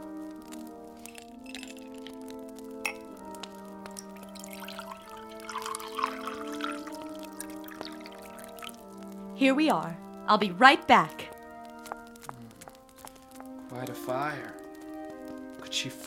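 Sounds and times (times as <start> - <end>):
music: 0.0 - 16.0
double scotch poured into a glass: 1.1 - 2.2, 3.9 - 8.9
speech: 9.4 - 11.2.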